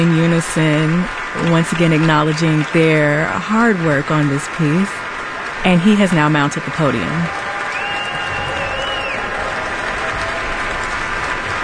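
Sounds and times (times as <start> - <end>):
speech: 0.0 - 7.5
large audience and musicians applauding: 0.0 - 11.6
faint whistles or tones: 7.6 - 9.3.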